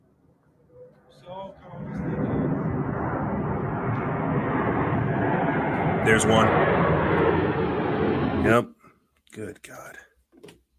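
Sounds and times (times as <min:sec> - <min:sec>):
jet aircraft engine roar taking off: 0:00.7 - 0:08.7
speech: 0:06.0 - 0:06.9, 0:08.4 - 0:08.7, 0:09.3 - 0:10.1.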